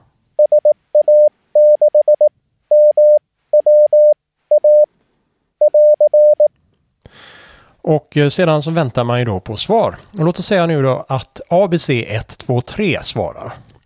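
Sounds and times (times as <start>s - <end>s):
radio call sign sent in Morse code CW beeping tone: 0.4s - 4.9s, 5.6s - 6.5s
speech: 7.9s - 13.7s.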